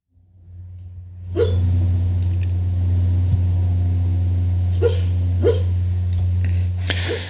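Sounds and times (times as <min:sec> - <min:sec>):
low hum: 0:00.1 - 0:07.2
small dog yipping and huffing while dreaming: 0:01.4 - 0:01.6, 0:04.8 - 0:05.7.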